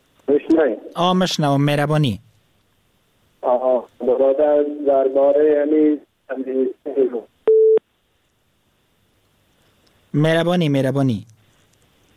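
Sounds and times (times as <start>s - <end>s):
speech: 0.3s - 2.3s, 3.4s - 7.3s, 10.1s - 11.4s
telephone line beep after a caller is cut off: 7.5s - 7.8s.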